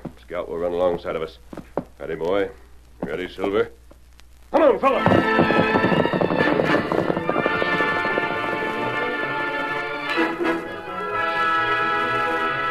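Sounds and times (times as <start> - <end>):
speech: 0.3 - 3.8, 4.6 - 6.2
galloping horses with rapid hoofbeats: 4.8 - 10.1
loud sustained orchestral music: 5.2 - 12.6.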